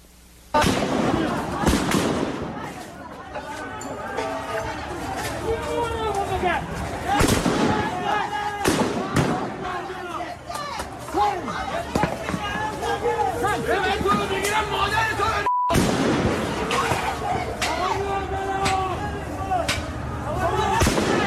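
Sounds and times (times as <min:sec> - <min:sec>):
sharp gunshots from security forces firing at protesters: 0:00.6 - 0:02.7, 0:07.2 - 0:08.0, 0:08.6 - 0:09.6, 0:15.7 - 0:17.0, 0:20.8 - 0:21.2
crowd of agitated voices shouting and calling out: 0:00.6 - 0:15.5, 0:16.1 - 0:21.2.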